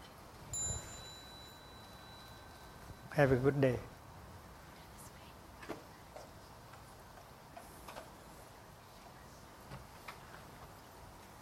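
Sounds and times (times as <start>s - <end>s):
small bell strike signalling children to bow after practice: 0.5s - 3.5s
speech: 3.2s - 3.9s.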